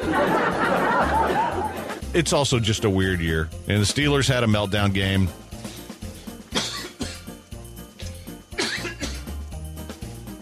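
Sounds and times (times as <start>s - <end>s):
laughter: 0.0s - 2.1s
speech: 2.1s - 5.4s
person coughing away from the microphone: 6.5s - 7.3s, 8.6s - 9.3s.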